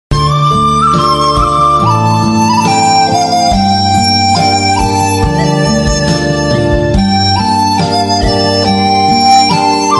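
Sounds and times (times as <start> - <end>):
Japanese bamboo flute background music: 0.1 - 9.9.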